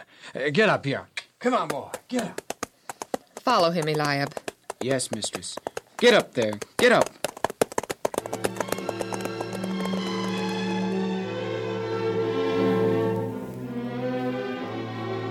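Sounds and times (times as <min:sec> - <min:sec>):
speech: 0:00.0 - 0:02.4, 0:03.4 - 0:07.2
donkey hooves clip-clopping: 0:01.4 - 0:11.4
sustained orchestral music: 0:08.3 - 0:15.2.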